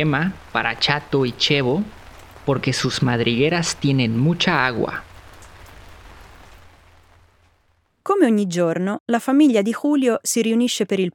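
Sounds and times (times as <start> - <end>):
speech: 0.0 - 5.1, 8.1 - 11.1
steady rain spattering on surfaces: 0.0 - 7.8.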